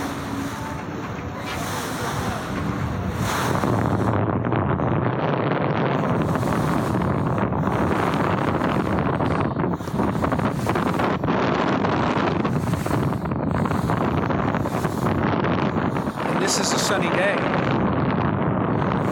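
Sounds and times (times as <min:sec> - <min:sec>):
strong wind across the Sea of Galilee: 0:00.0 - 0:19.0
waves washing and slapping on the Sea of Galilee: 0:00.0 - 0:19.0.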